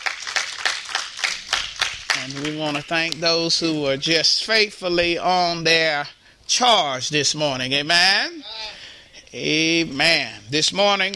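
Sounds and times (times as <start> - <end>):
church audience clapping hands in praise: 0.0 - 3.2
speech: 2.2 - 11.1.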